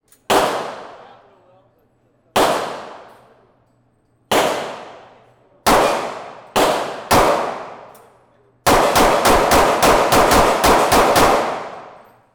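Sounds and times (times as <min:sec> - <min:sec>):
assault rifle rapid fire in a shoot out: 0:00.3 - 0:01.1, 0:02.4 - 0:03.2, 0:04.3 - 0:05.1, 0:05.7 - 0:07.9, 0:08.7 - 0:12.1.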